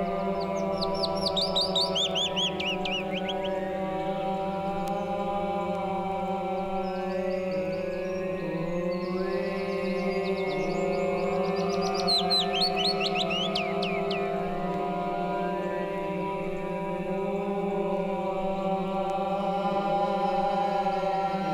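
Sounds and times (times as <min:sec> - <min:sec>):
high bird notes: 0:00.0 - 0:03.8, 0:08.9 - 0:14.7
Willow Warbler song: 0:00.0 - 0:21.5.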